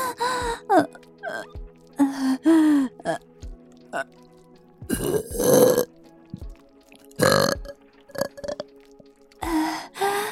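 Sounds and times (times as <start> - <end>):
person gasping: 2.0 - 3.0, 9.4 - 10.2
loud burps: 4.9 - 5.9, 7.2 - 8.6.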